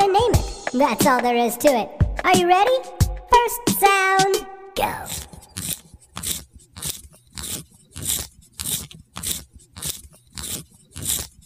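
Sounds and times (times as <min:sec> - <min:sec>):
speech: 0:00.7 - 0:05.3
pencil being sharpened: 0:04.8 - 0:11.4.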